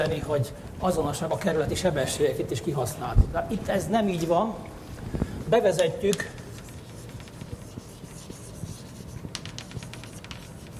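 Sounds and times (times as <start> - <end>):
speech: 0.0 - 6.4
low constant hum: 0.0 - 10.7
handwriting with pen or chalk strokes: 6.4 - 10.7.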